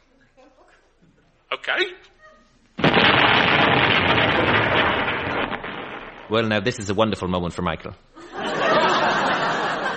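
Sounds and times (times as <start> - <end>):
speech: 1.7 - 2.1, 6.3 - 8.2
bomb explosion: 2.8 - 6.7
laughter: 8.2 - 9.9.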